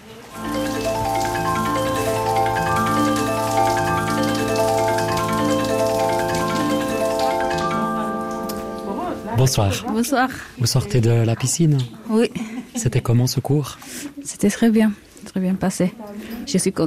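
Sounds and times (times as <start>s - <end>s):
shower water running: 0.0s - 10.1s
speech: 9.5s - 16.8s.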